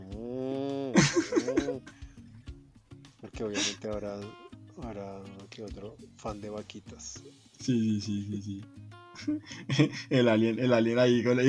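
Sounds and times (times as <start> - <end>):
person imitating cow mooing as a car horn: 0.0 - 1.0
people laughing: 1.0 - 2.0, 3.6 - 3.8, 9.2 - 10.4
speech: 1.1 - 2.0, 3.2 - 11.4.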